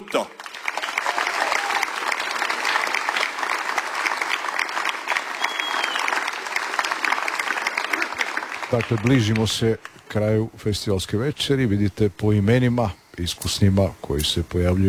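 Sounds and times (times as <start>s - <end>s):
audience applause at an evening song festival: 0.0s - 10.5s
speech: 8.7s - 14.8s.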